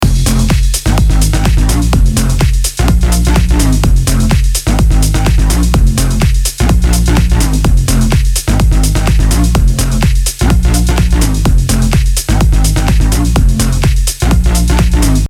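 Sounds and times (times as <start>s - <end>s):
low-cut music loop without kick drum: 0.0s - 15.2s.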